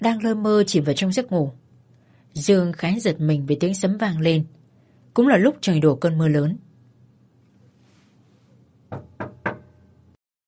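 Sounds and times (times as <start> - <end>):
speech: 0.0 - 1.6, 2.3 - 4.6, 5.2 - 6.7
faint low hum: 0.0 - 10.2
quick hard knocks on a door from outside: 8.9 - 9.7.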